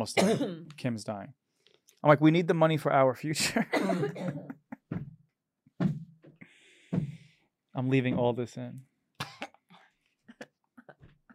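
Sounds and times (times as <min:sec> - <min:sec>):
person coughing from a tickle in the throat: 0:00.0 - 0:00.7, 0:03.6 - 0:04.6, 0:09.2 - 0:10.5
speech: 0:00.0 - 0:01.4, 0:02.0 - 0:04.6, 0:07.8 - 0:08.9
person clearing throat from a tickle in the throat: 0:00.1 - 0:00.7, 0:03.7 - 0:04.5, 0:09.2 - 0:09.7.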